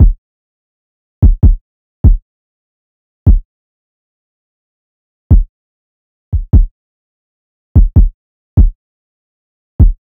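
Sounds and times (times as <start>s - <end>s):
kick drum loop at 147 BPM: 0.0s - 0.2s, 1.2s - 2.2s, 3.3s - 3.5s, 6.4s - 6.7s, 7.8s - 8.8s, 9.8s - 10.0s.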